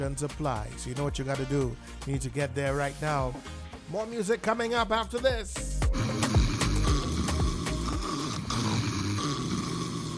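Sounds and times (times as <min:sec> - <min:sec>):
speech: 0:00.0 - 0:06.0
person snoring loudly while asleep: 0:05.9 - 0:10.1.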